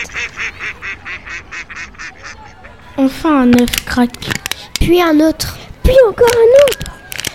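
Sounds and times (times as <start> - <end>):
speech: 0.0 - 2.0, 3.0 - 6.9
ducks quacking: 0.0 - 3.1.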